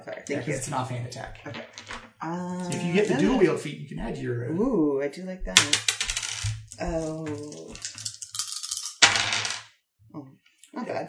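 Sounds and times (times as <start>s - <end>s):
speech: 0.1s - 6.0s, 6.8s - 8.0s, 10.8s - 11.0s
plastic dice being stacked during a tabletop role-playing game session: 1.5s - 2.1s, 5.6s - 9.6s.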